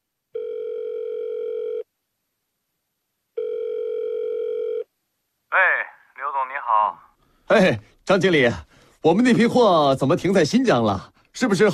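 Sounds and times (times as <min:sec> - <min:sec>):
telephone ringback tone while placing a call: 0:00.4 - 0:01.8, 0:03.4 - 0:04.9
speech: 0:07.6 - 0:11.7.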